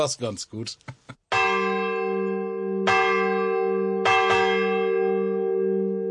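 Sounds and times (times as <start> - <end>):
speech: 0.0 - 1.1
church bell ringing: 1.3 - 6.0.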